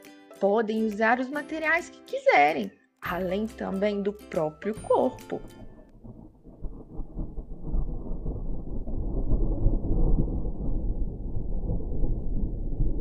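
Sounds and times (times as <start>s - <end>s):
speech: 0.4s - 5.6s
deep continuous rolling thunder: 5.6s - 12.9s.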